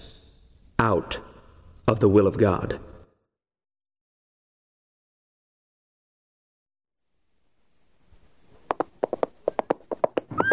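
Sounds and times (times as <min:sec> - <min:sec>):
speech: 0:00.8 - 0:01.3, 0:01.9 - 0:02.9
horse hooves clip-clopping: 0:08.5 - 0:10.5.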